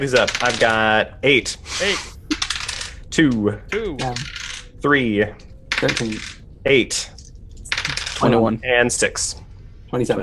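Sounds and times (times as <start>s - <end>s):
eight-sided dice rolled during a tabletop role-playing game: 0.0s - 0.8s, 2.4s - 3.0s, 4.2s - 4.6s, 7.2s - 8.3s
speech: 0.0s - 2.1s, 3.2s - 7.2s, 8.2s - 10.2s.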